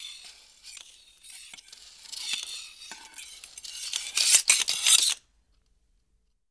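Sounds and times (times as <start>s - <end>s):
group ice skating: 0.0s - 5.2s.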